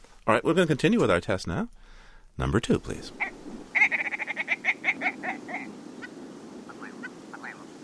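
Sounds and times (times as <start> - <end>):
speech: 0.3 - 1.8, 2.4 - 3.3
willow ptarmigan giving nasal croaking calls: 2.8 - 7.8.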